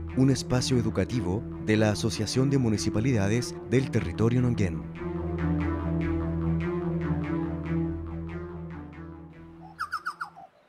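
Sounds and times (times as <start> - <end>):
speech: 0.2 - 5.0
chucao tapaculo call with loud pulsed notes: 5.0 - 10.6.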